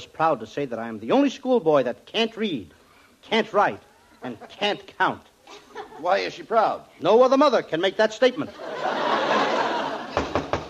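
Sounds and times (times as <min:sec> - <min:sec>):
speech: 0:00.0 - 0:09.0
laughter: 0:04.2 - 0:04.8, 0:05.4 - 0:06.4, 0:08.4 - 0:10.5
knocks on a door: 0:10.1 - 0:10.6.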